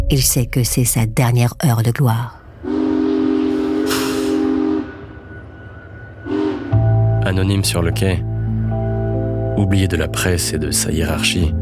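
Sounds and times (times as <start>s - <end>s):
prison convoy train rumbling as it pulls away: 0.0s - 11.6s
speech: 0.1s - 2.7s, 7.3s - 8.3s, 9.6s - 11.6s
train whistle at a station: 2.6s - 7.3s
train steam hiss: 3.5s - 4.7s.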